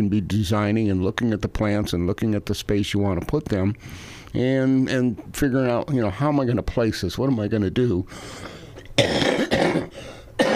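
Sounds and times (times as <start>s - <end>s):
speech: 0.0s - 9.5s
person coughing with a rotten cough: 9.0s - 10.5s.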